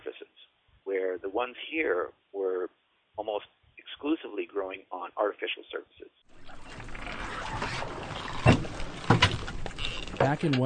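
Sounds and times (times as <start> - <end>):
speech: 1.2 - 6.1, 10.2 - 10.6
diver climbing into a small skiff, clunks and splashes against the hull: 6.3 - 10.6
lapping water: 6.3 - 10.6
wind: 6.3 - 10.6.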